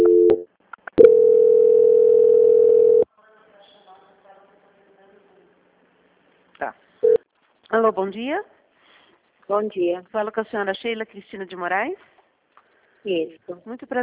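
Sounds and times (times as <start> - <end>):
telephone line tone during a call transfer: 0.0 - 3.1
speech: 8.0 - 8.6, 9.5 - 12.1, 13.0 - 14.0.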